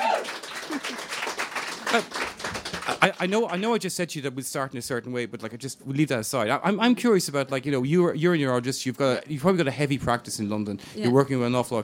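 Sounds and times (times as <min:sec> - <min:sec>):
audience applause welcoming a guest: 0:00.0 - 0:03.8
speech: 0:01.9 - 0:02.3, 0:03.0 - 0:11.8.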